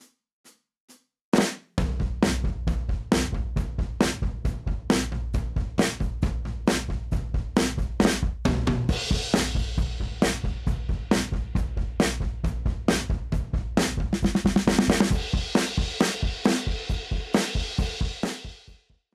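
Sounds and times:
1970s drums: 0:01.4 - 0:18.9.

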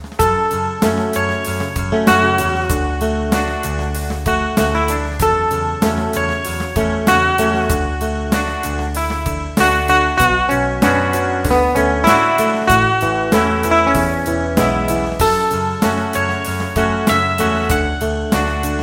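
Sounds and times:
clean smooth electric guitar: 0:00.0 - 0:18.8.

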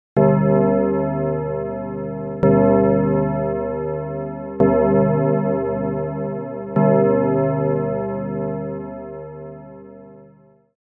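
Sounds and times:
FM midnight bell: 0:00.2 - 0:10.7.

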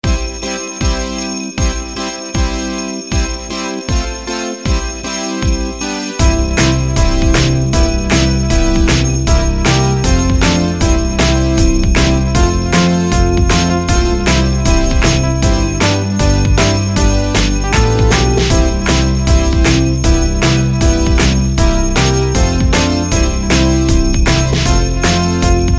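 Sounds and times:
sleigh bells jingling: 0:00.0 - 0:25.7.

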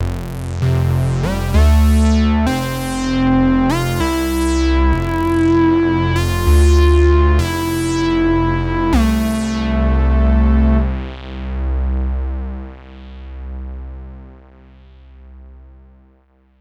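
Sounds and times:
analog pulse: 0:00.0 - 0:11.2.

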